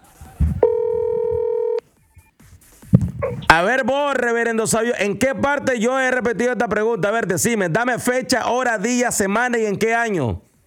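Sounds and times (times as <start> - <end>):
telephone tone as a call is dialed: 0.6 - 1.8
speech: 3.5 - 10.5.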